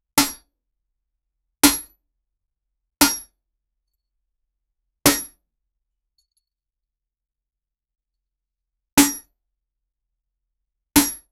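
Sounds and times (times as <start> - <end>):
metal bat hitting: 0.2 - 0.5, 3.0 - 3.3, 5.1 - 5.4, 9.0 - 9.3, 11.0 - 11.3.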